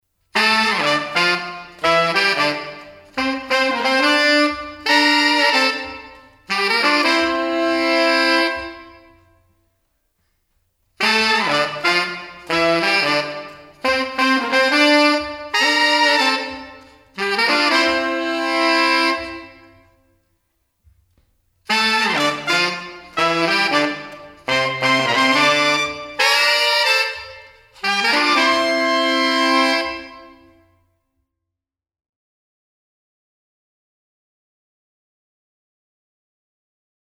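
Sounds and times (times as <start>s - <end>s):
horn section with hall reverb: 0.3s - 9.4s, 11.0s - 20.0s, 21.7s - 30.7s.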